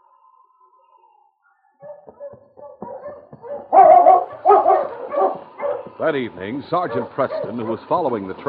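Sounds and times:
speech: 0:01.8 - 0:02.8, 0:06.0 - 0:08.4
pack of sled dogs barking and yipping: 0:01.8 - 0:08.4.

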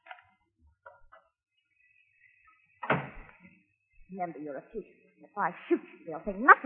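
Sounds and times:
door leading to the garage thumping open: 0:02.8 - 0:03.4
speech: 0:04.1 - 0:06.6.

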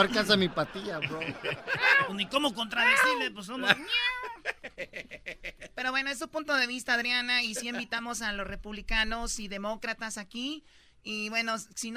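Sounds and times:
laughter: 0:00.0 - 0:05.8, 0:07.5 - 0:07.8
speech: 0:00.0 - 0:11.9
cat meowing: 0:03.0 - 0:04.4.

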